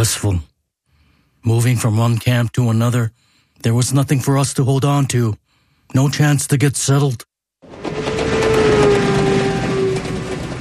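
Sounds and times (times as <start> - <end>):
speech: 0.0 - 0.5, 1.4 - 7.3
moving train carrying displaced people between camps: 7.6 - 10.5
low whine of a moving train: 7.7 - 10.5.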